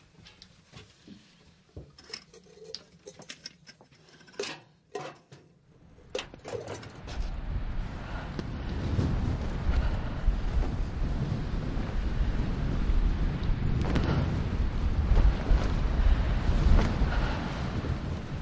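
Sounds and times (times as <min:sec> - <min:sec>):
strong wind roaring across the microphone: 0:05.8 - 0:18.4.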